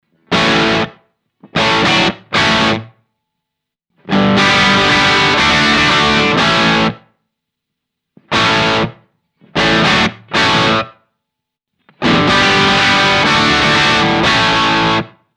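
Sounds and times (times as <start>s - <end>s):
Tokai LC-85 electric guitar through a Marshall-style amp: 0.2s - 3.0s, 4.0s - 7.1s, 8.2s - 11.0s, 11.9s - 15.2s.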